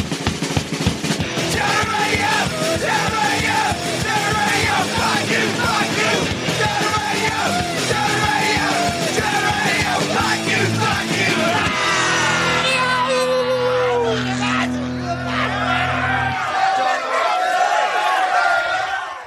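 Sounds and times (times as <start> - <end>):
driving drums in a loud punk theme song: 0.0 - 13.6
distorted guitars in a loud punk theme song: 0.0 - 16.7
chorus of voices screaming and yelling in a punk theme song: 1.3 - 19.2.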